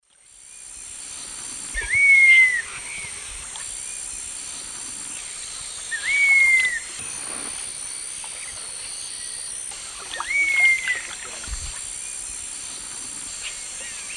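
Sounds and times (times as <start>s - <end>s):
Attila cinnamomeus call in the Eastern Lowlands of South America: 1.8s - 3.3s, 5.9s - 7.5s, 10.1s - 11.3s.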